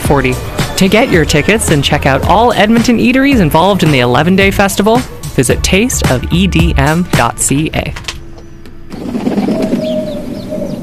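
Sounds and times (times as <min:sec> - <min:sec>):
speech: 0:00.1 - 0:08.1
pigeon cooing: 0:08.9 - 0:10.8.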